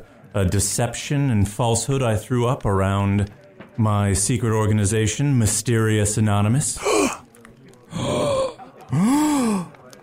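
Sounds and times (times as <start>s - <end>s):
speech: 0.4s - 7.2s
several voices gasping together: 6.8s - 9.9s.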